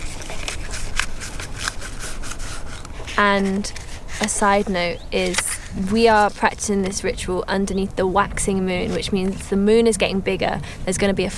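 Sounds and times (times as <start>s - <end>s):
paper crinkling and rustling as it is rolled up: 0.0s - 7.0s
speech: 3.2s - 11.3s.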